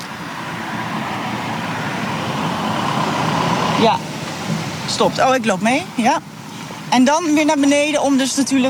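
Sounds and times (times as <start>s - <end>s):
taxi approaching on a street: 0.0s - 8.6s
speech: 3.8s - 4.1s, 4.9s - 8.6s.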